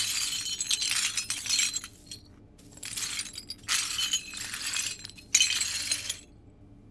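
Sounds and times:
broken glass shards scraped and swept up beside a bathtub: 0.0 - 6.2.

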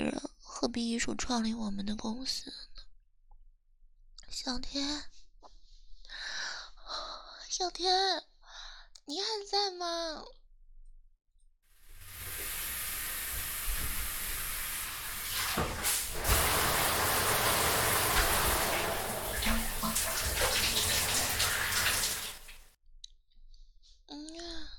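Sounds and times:
speech: 0.0 - 2.7, 4.3 - 5.1, 7.5 - 8.2, 9.1 - 10.4
water running loudly for a bath: 11.8 - 22.7.

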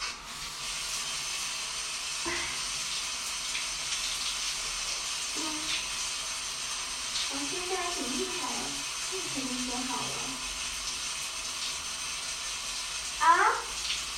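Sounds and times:
water running from a tap after a pipe repair: 0.0 - 14.1.

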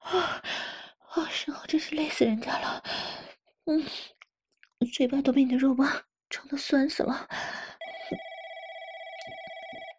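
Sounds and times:
speech: 0.1 - 0.5, 1.4 - 4.2, 4.8 - 8.3
telephone ringing with a continuous electronic tone: 7.8 - 9.9.

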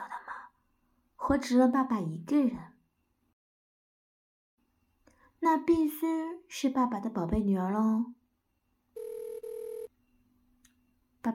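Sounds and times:
speech: 1.3 - 2.7, 5.5 - 8.2
telephone ringing with electronic tone bursts: 9.0 - 9.9.

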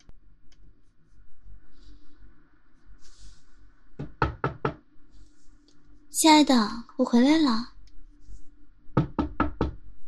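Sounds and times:
faint low hum: 0.0 - 10.0
firm knocking on a door: 4.0 - 4.8, 8.9 - 9.8
speech: 6.2 - 7.7.

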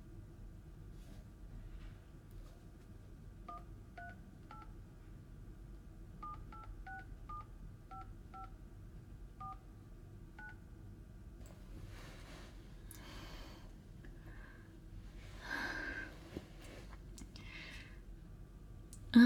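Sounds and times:
steady low hum: 0.0 - 19.2
dual-tone telephone keypad beeps: 3.5 - 4.7, 6.2 - 8.5, 9.4 - 9.6, 10.4 - 10.6
soft breathy rustle: 11.6 - 13.7, 14.3 - 17.1.

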